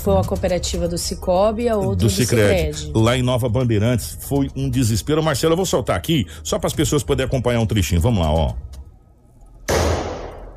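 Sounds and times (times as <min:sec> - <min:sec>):
speech: 0:00.0 - 0:08.7
gunshot during a bank robbery: 0:09.7 - 0:10.5.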